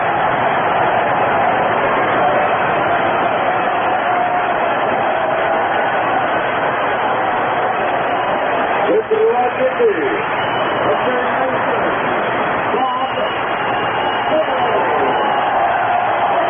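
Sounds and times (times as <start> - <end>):
large stadium crowd cheering and shouting in a standing ovation: 0.0 - 16.4.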